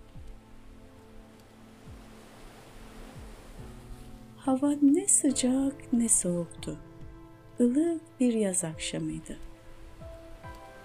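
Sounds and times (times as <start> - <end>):
ocean waves washing onto a shore: 0.0 - 7.0, 9.4 - 10.8
speech: 4.4 - 6.9, 7.6 - 9.5.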